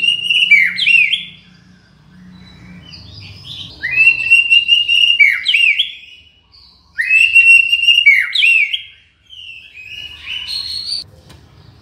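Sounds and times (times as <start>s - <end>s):
White-rumped shama song of clear sustained whistles in Borneo: 0.0s - 1.4s, 3.8s - 11.0s.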